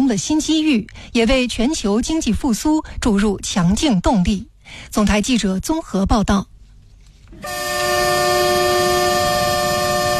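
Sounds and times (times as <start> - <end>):
speech: 0.1 - 6.5
freight train horn blaring at a railway station: 7.4 - 10.1.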